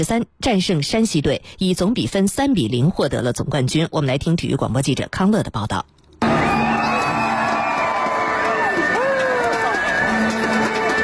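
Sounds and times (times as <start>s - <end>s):
speech: 0.0s - 6.0s
crowd cheering at a women's basketball championship game in an arena: 6.2s - 11.0s.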